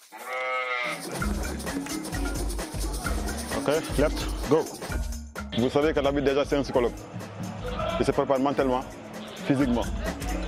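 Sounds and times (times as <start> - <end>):
speech: 0.1 - 2.6, 3.7 - 7.3, 8.0 - 10.3
single sheep bleating: 0.2 - 1.2, 9.1 - 9.7.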